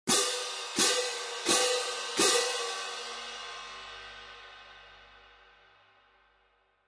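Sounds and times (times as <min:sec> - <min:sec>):
16in medium light orchestral cymbal pair: 0:00.1 - 0:06.6.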